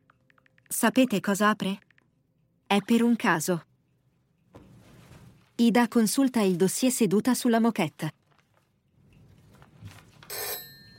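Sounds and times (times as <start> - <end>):
speech: 0.7 - 1.9, 2.7 - 3.7, 5.6 - 8.2
old landline telephone bell ringing on the floor: 10.3 - 10.9.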